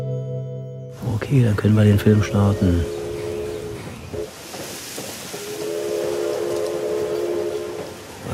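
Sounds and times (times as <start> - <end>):
rumbling hissing noise of a train getting under way: 1.0 - 8.3
speech: 1.3 - 3.0
train whistle long steady blasts: 2.7 - 3.9, 5.3 - 8.0.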